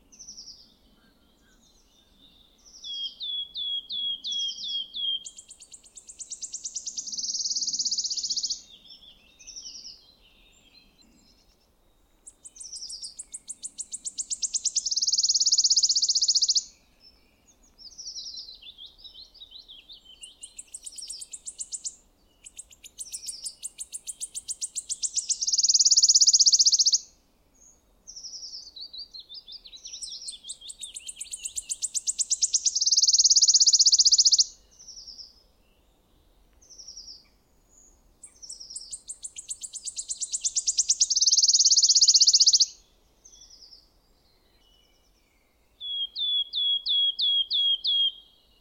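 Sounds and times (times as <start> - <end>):
wood warbler singing: 0.0 - 48.5.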